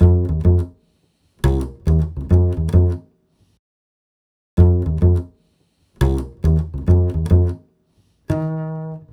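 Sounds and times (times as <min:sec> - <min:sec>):
nu jazz bass in F major: 0:00.0 - 0:00.8, 0:01.4 - 0:03.0, 0:04.6 - 0:05.3, 0:06.0 - 0:07.6, 0:08.3 - 0:09.1.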